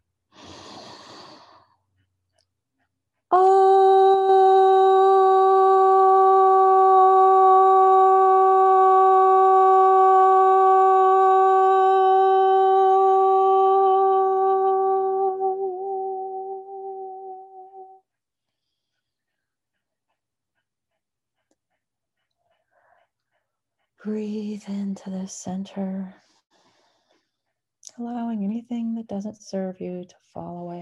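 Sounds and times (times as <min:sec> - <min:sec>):
deep breath drawn in: 0:00.4 - 0:01.7
single voice chanting a long steady vowel O: 0:03.3 - 0:18.0
speech: 0:25.0 - 0:26.2, 0:29.1 - 0:30.6.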